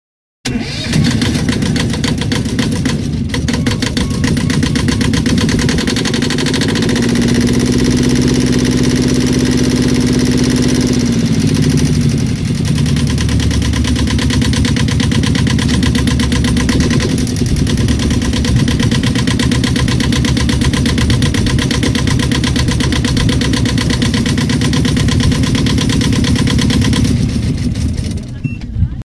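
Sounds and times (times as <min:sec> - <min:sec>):
boat motor: 0:00.6 - 0:28.2.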